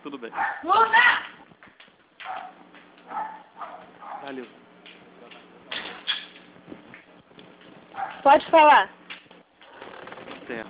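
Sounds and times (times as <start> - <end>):
speech: 0.1 - 1.2, 4.3 - 4.6, 8.2 - 9.0, 10.5 - 10.6
dog barking: 0.3 - 0.7, 2.2 - 4.4, 7.9 - 8.4.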